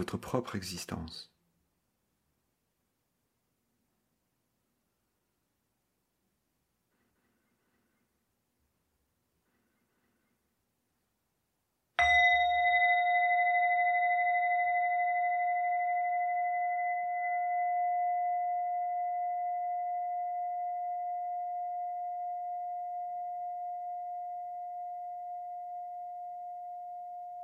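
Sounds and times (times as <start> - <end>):
speech: 0.0 - 1.3
meditation singing bowl struck and ringing: 12.0 - 27.4.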